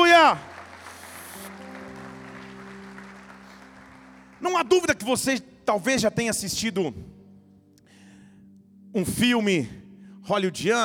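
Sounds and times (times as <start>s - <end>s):
congregation applauding: 0.0s - 5.9s
sustained keyboard or organ chords: 0.0s - 10.8s
speech: 0.3s - 0.5s, 4.4s - 7.2s, 8.9s - 10.8s.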